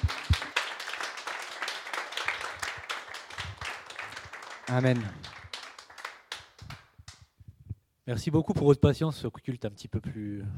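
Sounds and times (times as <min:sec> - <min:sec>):
audience applauding: 0:00.0 - 0:07.2
speech: 0:04.7 - 0:05.2, 0:08.1 - 0:10.5.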